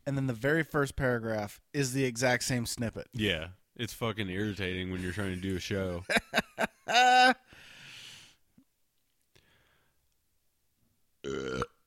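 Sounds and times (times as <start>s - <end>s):
speech: 0.1s - 7.4s
breathy exhale: 7.5s - 8.4s
person burping: 11.2s - 11.8s.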